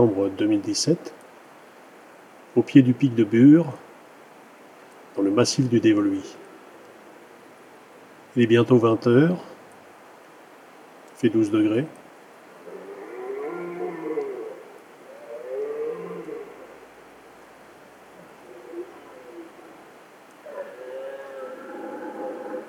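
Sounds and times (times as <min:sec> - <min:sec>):
speech: 0:00.0 - 0:01.2, 0:02.6 - 0:03.8, 0:05.2 - 0:06.4, 0:08.4 - 0:09.5, 0:11.2 - 0:12.0
red deer stag bellowing: 0:12.6 - 0:22.6.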